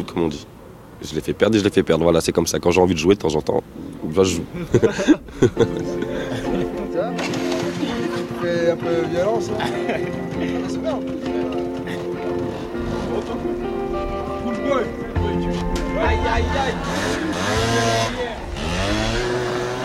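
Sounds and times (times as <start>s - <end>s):
speech: 0.0s - 6.1s, 8.4s - 11.8s, 16.0s - 18.2s
laughter: 4.4s - 19.7s
motorcycle engines revving as bikes ride around a circuit: 4.8s - 8.9s, 9.6s - 14.3s, 16.4s - 19.8s.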